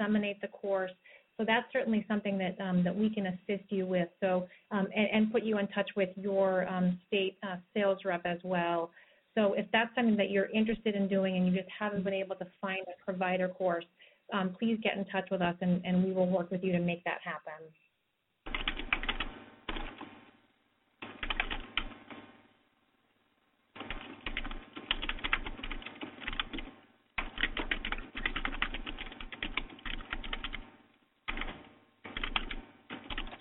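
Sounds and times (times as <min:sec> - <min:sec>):
speech: 0:00.0 - 0:17.8
fast typing on a computer keyboard: 0:18.5 - 0:20.1, 0:21.0 - 0:22.1, 0:23.8 - 0:30.7, 0:31.3 - 0:33.4.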